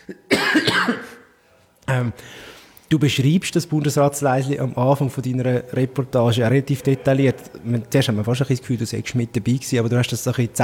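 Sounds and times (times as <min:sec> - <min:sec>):
single loud cough: 0:00.0 - 0:01.3
speech: 0:02.0 - 0:10.6.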